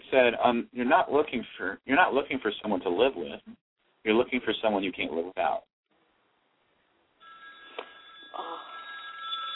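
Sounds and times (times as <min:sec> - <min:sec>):
speech: 0:00.1 - 0:05.7
telephone ringing with a bright electronic tone: 0:07.2 - 0:09.5.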